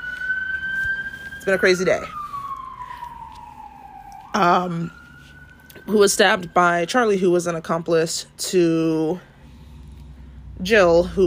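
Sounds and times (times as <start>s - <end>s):
ambulance siren wailing: 0.0s - 8.8s
speech: 1.4s - 2.2s, 4.4s - 5.0s, 5.8s - 9.3s, 10.6s - 11.2s.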